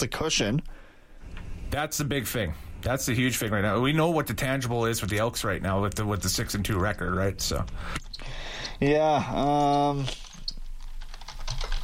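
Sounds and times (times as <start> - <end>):
speech: 0.0 - 0.8, 1.7 - 10.2
typing on a computer keyboard: 10.2 - 11.8.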